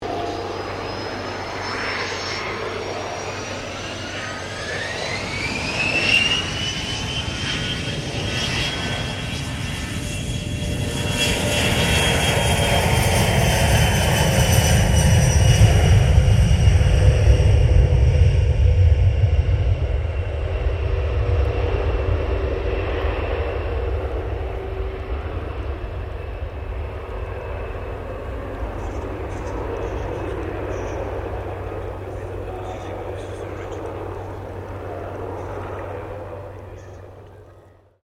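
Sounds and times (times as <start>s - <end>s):
1995 A320 Airbus airplane takeoff: 0.0s - 38.0s.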